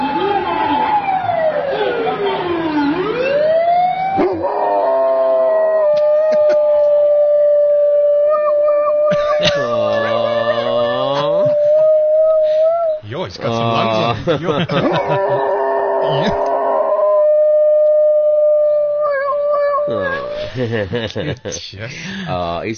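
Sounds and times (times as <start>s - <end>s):
ambulance siren wailing: 0.0s - 13.1s, 14.8s - 20.4s
dog howling along with an ambulance siren: 4.2s - 13.0s, 14.8s - 20.4s
laughter: 6.0s - 6.9s, 9.1s - 11.9s, 13.5s - 16.6s, 19.9s - 22.1s
speech: 14.3s - 15.5s, 16.1s - 16.5s, 19.9s - 22.7s.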